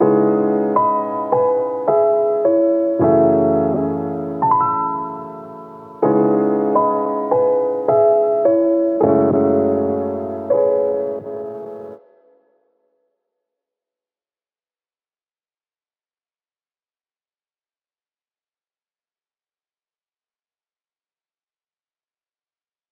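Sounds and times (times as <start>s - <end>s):
wet piano in C sharp minor at 80 BPM: 0.0s - 12.4s.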